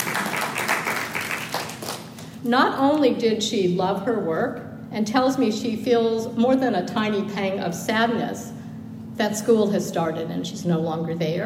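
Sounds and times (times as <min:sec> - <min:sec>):
audience applause: 0:00.0 - 0:02.1
speech: 0:02.4 - 0:08.5, 0:09.2 - 0:11.4.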